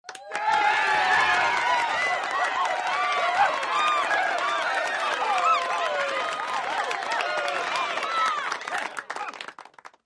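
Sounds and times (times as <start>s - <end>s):
wild game show crowd cheering: 0.1s - 9.7s.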